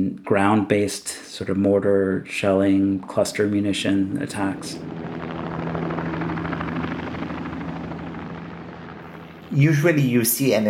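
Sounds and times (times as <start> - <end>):
speech: 0.0 - 5.2, 9.6 - 10.6
helicopter flying overhead with rotor thrum and engine roar: 2.5 - 10.6.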